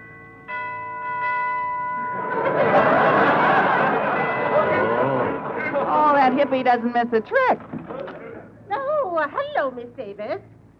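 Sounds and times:
doorbell chiming with two ringing tones: 0.0 - 5.6
crowd laughter: 2.0 - 6.8
murmuring voices: 3.6 - 8.7
speech: 6.4 - 8.0, 9.2 - 10.5.

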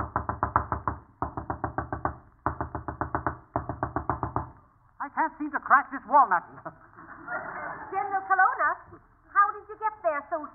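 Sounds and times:
rapid insistent knocking on a door: 0.0 - 4.6
speech: 5.2 - 9.1
laughter: 6.7 - 8.8.

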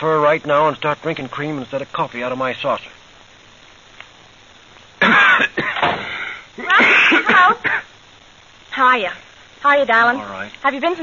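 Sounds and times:
speech: 0.0 - 3.0, 5.4 - 5.7, 8.8 - 11.0
harsh wheezy raspy coughing: 5.0 - 7.9.

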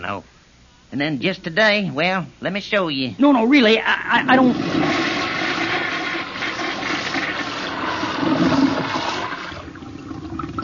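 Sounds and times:
speech: 0.0 - 4.8
toilet flushing: 4.3 - 10.6.

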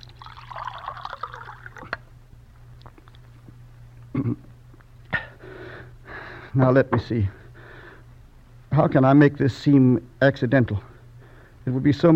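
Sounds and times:
water being poured: 0.0 - 2.0
faint low hum: 0.0 - 12.1
speech: 6.6 - 7.4, 8.8 - 10.9, 11.6 - 12.1.

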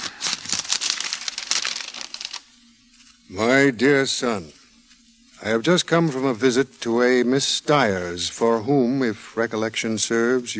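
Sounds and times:
paper crinkling and rustling as a letter is opened: 0.0 - 3.3
speech: 3.3 - 4.6, 5.4 - 10.5.

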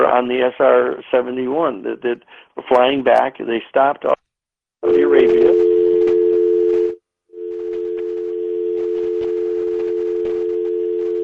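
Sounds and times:
speech: 0.1 - 4.2, 4.8 - 5.7
faint telephone line noise: 4.8 - 11.2
telephone dial tone interrupting a phone call: 4.9 - 11.2.

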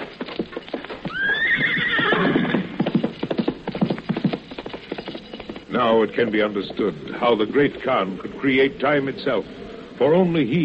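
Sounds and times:
rapid horse hooves clip-clopping: 0.0 - 10.6
fresh horse whinnying at a relay post station: 1.0 - 3.1
speech: 5.8 - 10.6.

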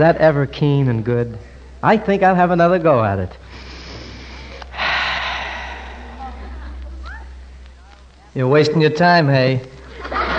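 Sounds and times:
speech: 0.0 - 3.5, 8.4 - 10.2
faint low hum: 0.0 - 10.3
long loud deep inhale through the nose: 3.4 - 6.6
laughter: 9.9 - 10.3.

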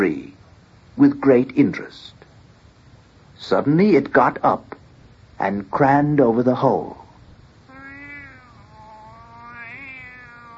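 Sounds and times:
speech: 0.0 - 0.3, 1.0 - 2.2, 3.4 - 4.8, 5.4 - 7.0
white tomcat meowing in an ash tree: 7.7 - 10.5.

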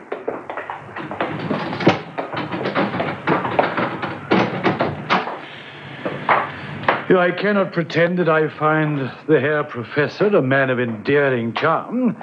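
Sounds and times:
door swinging open: 0.9 - 5.4
door lock and handle clicking and rattling in a building: 1.0 - 5.4
speech: 7.1 - 12.2.

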